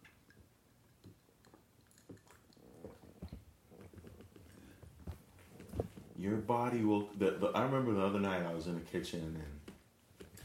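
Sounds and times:
person sipping and swallowing water: 0.1 - 4.8
speech: 6.2 - 9.6.

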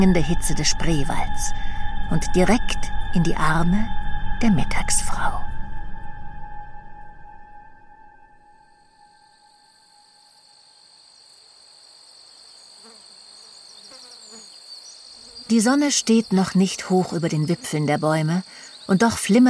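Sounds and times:
speech: 0.0 - 5.4, 15.5 - 19.4
low rumble: 0.0 - 8.7
crickets chirping in fields and meadows on a hot summer morning: 0.0 - 19.4.

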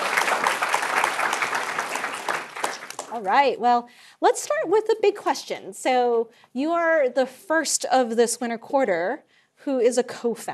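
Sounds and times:
audience applause: 0.0 - 3.2
speech: 3.2 - 10.5.

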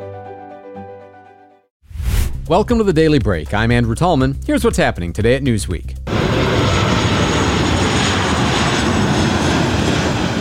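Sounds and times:
speech: 2.5 - 6.5
airplane engine roar: 6.1 - 10.4.

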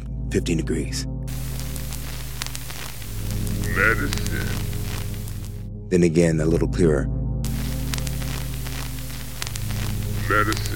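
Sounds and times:
speech: 0.3 - 1.2, 3.8 - 4.7, 5.9 - 7.2, 10.3 - 10.7
faint crackling ticks: 1.3 - 5.6, 7.4 - 10.7
electronic static hiss from an EVP recorder: 1.3 - 5.7, 7.4 - 10.7
low droning hum: 1.3 - 5.8, 7.5 - 10.7.

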